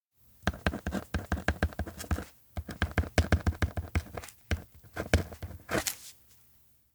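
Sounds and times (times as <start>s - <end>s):
writing a name on a roster: 0.5s - 6.0s.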